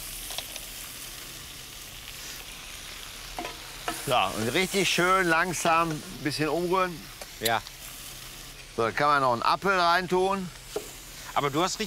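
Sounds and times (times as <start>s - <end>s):
brown crabs sizzling in a pan with carrot and celery: 0.0s - 11.8s
speech: 4.1s - 7.7s, 8.8s - 10.6s, 11.4s - 11.8s.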